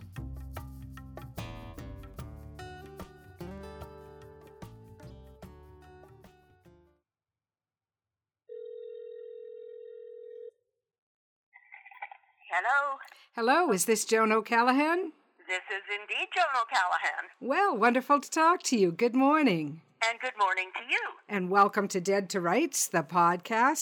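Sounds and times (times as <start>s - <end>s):
telephone dial tone while dialing a call: 8.5s - 10.6s
speech: 12.5s - 23.8s.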